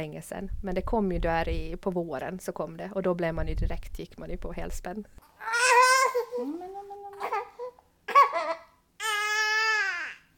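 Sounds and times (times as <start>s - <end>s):
speech: 0.0s - 5.8s, 6.4s - 7.4s
seven-week-old baby babbling: 5.4s - 10.3s.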